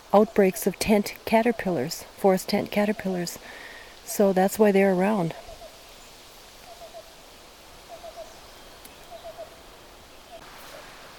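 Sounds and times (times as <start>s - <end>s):
outdoor hiss: 0.0s - 11.1s
speech: 0.1s - 5.4s
black-billed cuckoo calling: 6.6s - 7.2s, 7.8s - 11.0s.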